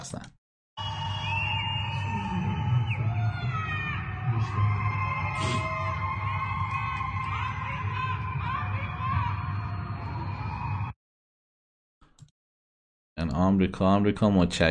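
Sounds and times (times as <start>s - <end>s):
large crowd celebrating with ululation, whoops and cheers: 0.8s - 11.0s
speech: 13.4s - 14.6s.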